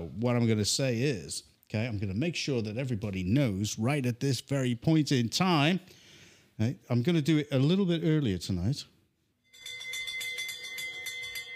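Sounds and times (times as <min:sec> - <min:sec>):
speech: 0:00.0 - 0:06.0, 0:06.6 - 0:08.9
loud electric bell ringing: 0:09.5 - 0:11.5.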